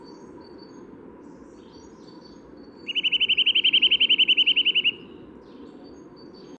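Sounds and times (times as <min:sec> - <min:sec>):
low background noise: 0:00.0 - 0:06.5
Eurasian nuthatch Sitta europaea rattling series of piping notes: 0:02.8 - 0:05.1.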